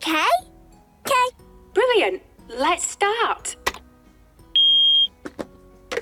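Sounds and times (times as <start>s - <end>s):
speech: 2.0s - 3.6s
high-pitched hearing test beep tone: 4.6s - 5.1s.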